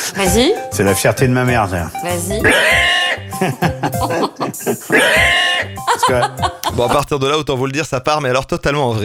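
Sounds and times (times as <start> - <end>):
speech: 0.1 - 9.0
person imitating a pig squealing: 2.4 - 3.2, 4.9 - 5.8
laughter: 3.4 - 7.1.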